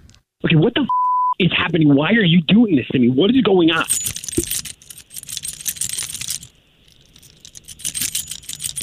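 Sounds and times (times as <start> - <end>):
speech: 0.5 - 4.2
ring of keys jingling and rattling: 3.8 - 8.8.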